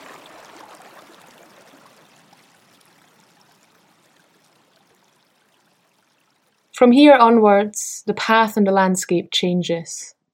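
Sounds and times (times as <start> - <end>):
fast-flowing stream water: 0.0 - 4.6
speech: 6.8 - 10.2.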